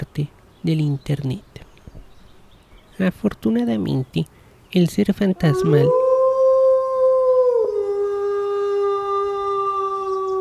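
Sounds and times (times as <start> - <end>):
speech: 0.0 - 1.5, 3.0 - 6.0
werewolf howl sound effect: 5.4 - 10.3.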